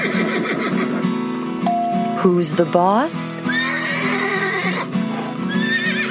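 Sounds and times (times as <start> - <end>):
two domestic palomino horses neighing and squealing while fighting: 0.0 - 1.4, 3.4 - 6.0
speech: 2.2 - 3.4.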